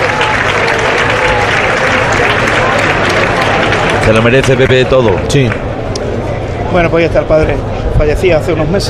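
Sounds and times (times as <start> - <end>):
large crowd applauding at a bullfight in a bullring in Huelva: 0.0 - 5.7
speech: 4.1 - 5.6, 6.7 - 8.8.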